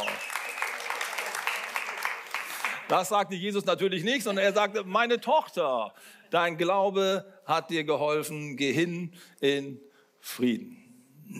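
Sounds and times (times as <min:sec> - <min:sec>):
audience applause: 0:00.0 - 0:03.0
speech: 0:02.9 - 0:11.3.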